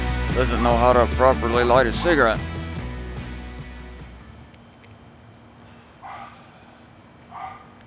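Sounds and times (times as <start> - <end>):
speech: 0.4 - 2.5
dogs barking: 5.7 - 7.8.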